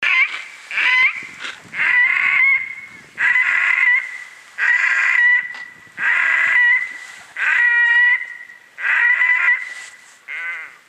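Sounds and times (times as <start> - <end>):
Podiceps grisegena calling: 0.0 - 10.8.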